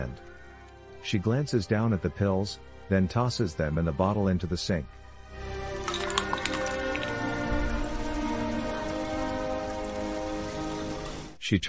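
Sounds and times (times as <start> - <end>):
speech: 0.0 - 0.3, 1.0 - 5.0, 11.5 - 11.6
rain falling outside a house: 5.7 - 11.4.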